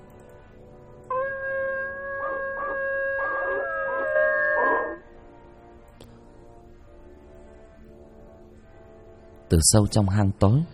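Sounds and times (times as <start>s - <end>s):
pack of dogs howling in a cave: 1.1s - 5.0s
speech: 9.5s - 10.7s.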